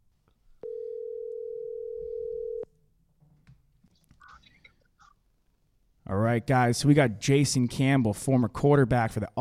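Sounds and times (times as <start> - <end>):
low noise on the phone line: 0.0 - 9.3
telephone tone as a phone call is placed: 0.6 - 2.7
speech: 6.2 - 9.3.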